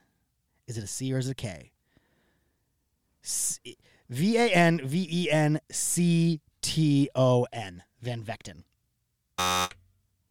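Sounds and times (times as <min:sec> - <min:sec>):
speech: 0:00.7 - 0:01.7, 0:03.2 - 0:08.7
game show electronic buzzer: 0:09.4 - 0:09.8.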